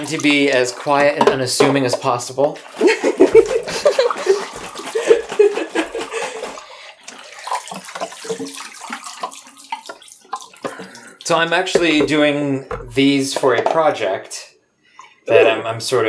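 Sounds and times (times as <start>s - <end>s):
speech: 0.0s - 4.3s, 11.3s - 14.4s, 15.3s - 16.0s
running water splashing while washing photographic film after fixing: 0.0s - 13.9s
laughter: 2.8s - 6.6s.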